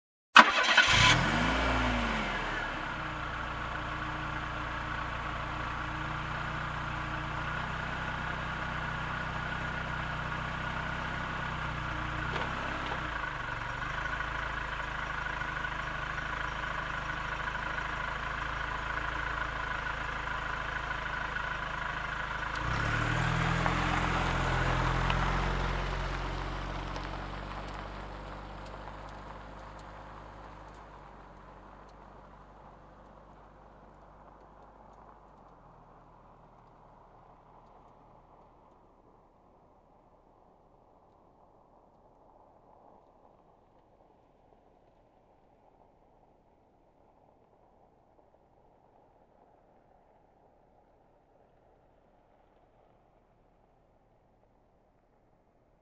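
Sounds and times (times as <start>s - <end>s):
car engine ignition: 0.4s - 39.6s.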